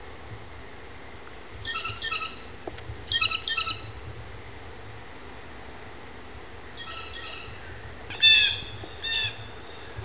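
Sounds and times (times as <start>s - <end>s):
blue jay: 1.6s - 2.5s, 3.1s - 3.9s, 6.7s - 10.0s.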